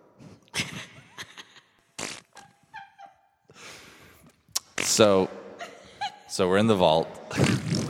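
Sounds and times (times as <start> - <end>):
sputtering fart noises: 2.0 - 2.5, 7.3 - 7.8
speech: 5.0 - 5.4, 6.4 - 7.6.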